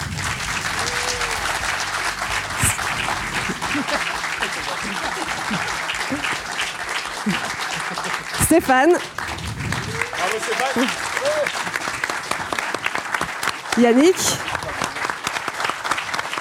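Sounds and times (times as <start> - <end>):
laughter: 0.0 - 9.2, 9.8 - 12.4
crowd clapping in dense sustained applause: 0.0 - 16.3
faint voices and whoops: 0.6 - 6.4, 9.7 - 11.8
speech: 8.5 - 9.2, 10.4 - 11.6, 13.8 - 14.5.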